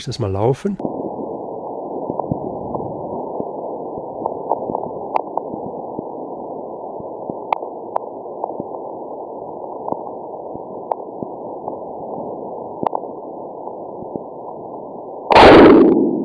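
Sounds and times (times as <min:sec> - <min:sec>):
speech: 0:00.0 - 0:00.9
steady hiss in sped-up seismic recording: 0:00.0 - 0:16.2.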